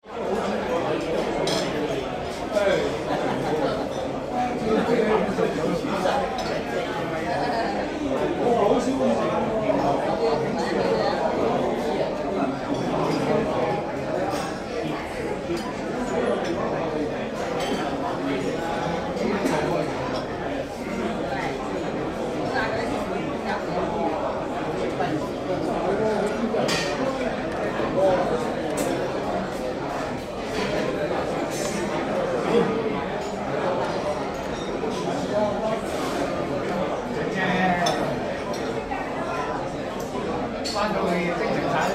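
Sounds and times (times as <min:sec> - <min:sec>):
Chinese restaurant ambience in Hong Kong: 0:00.1 - 0:41.9.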